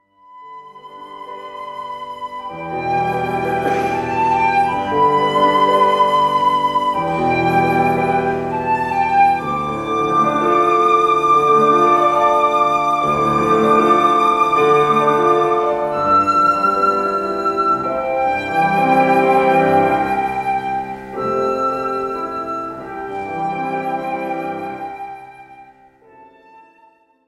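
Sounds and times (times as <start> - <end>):
piano piece: 0.0 - 27.2.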